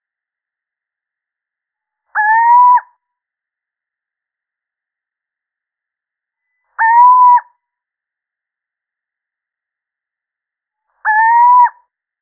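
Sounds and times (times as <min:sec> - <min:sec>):
male little owl hooting: 0:02.1 - 0:02.9, 0:06.8 - 0:07.5, 0:11.0 - 0:11.8.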